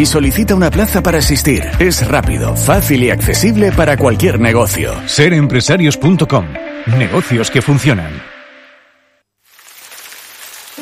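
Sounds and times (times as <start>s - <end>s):
speech: 0.0s - 8.3s
rain hissing on the surface of a snail-race track: 9.4s - 10.8s.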